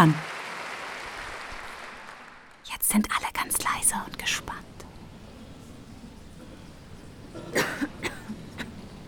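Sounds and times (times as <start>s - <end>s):
speech: 0.0s - 0.3s, 2.9s - 4.7s
opera audience member coughing: 7.3s - 8.8s.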